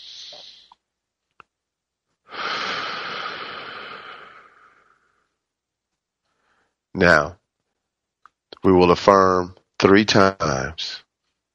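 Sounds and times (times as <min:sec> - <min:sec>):
deep breath taken during a guided affirmation session: 0:00.0 - 0:00.8, 0:02.2 - 0:05.4, 0:06.2 - 0:06.9
speech: 0:07.0 - 0:07.4, 0:08.6 - 0:11.0.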